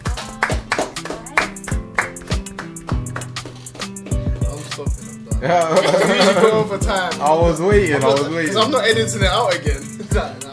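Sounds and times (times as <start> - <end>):
round of applause with hands clapping: 0.0 - 5.0, 5.8 - 6.5
speech: 5.4 - 10.4
laughter: 5.5 - 6.7.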